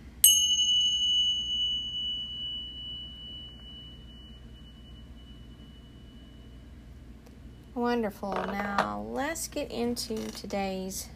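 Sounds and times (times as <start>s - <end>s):
meditation bell struck for meditation practice: 0.2s - 7.2s
speech: 7.8s - 11.1s.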